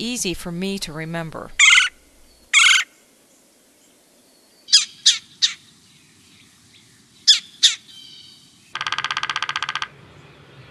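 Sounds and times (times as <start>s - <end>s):
speech: 0.0s - 1.6s
red-bellied woodpecker rolling calls: 1.6s - 2.9s, 7.3s - 10.0s.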